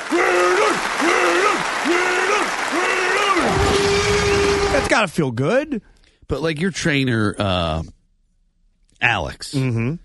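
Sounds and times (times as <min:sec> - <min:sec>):
voice imitating a roaring cheering football crowd: 0:00.0 - 0:04.9
speech: 0:05.0 - 0:08.0, 0:09.0 - 0:10.0.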